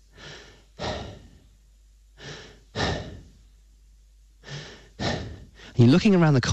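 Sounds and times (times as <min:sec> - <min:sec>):
person panting heavily during a tennis match: 0:00.0 - 0:01.5, 0:02.2 - 0:03.4, 0:04.4 - 0:05.8
speech: 0:05.8 - 0:06.5.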